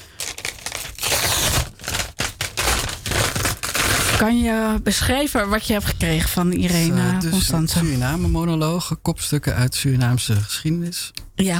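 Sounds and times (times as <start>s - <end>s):
wrapping paper torn and crumpled off a small gift package: 0.0s - 4.3s
speech: 4.2s - 11.5s.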